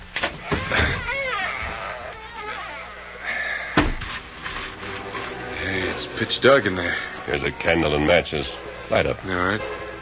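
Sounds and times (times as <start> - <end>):
heavy wooden outside double cellar door opening: 0.3 - 2.9
solid thud of a heavy wooden cellar door: 3.7 - 4.1
speech: 6.2 - 9.8.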